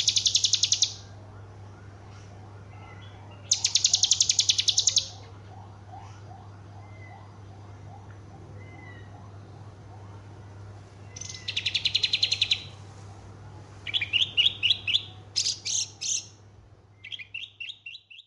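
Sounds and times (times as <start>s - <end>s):
Horsfield's bush lark song: 0.0s - 1.2s, 3.0s - 5.2s, 11.0s - 12.9s, 13.8s - 18.2s.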